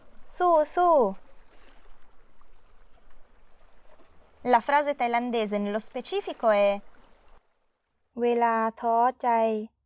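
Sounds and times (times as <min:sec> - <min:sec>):
waves breaking on the shore: 0:00.0 - 0:07.5
speech: 0:00.4 - 0:01.2, 0:04.4 - 0:06.9, 0:08.2 - 0:09.7.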